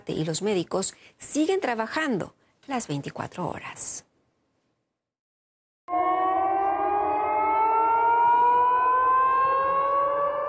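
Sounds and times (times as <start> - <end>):
speech: 0.0 - 4.1
air raid siren wailing: 5.9 - 10.4.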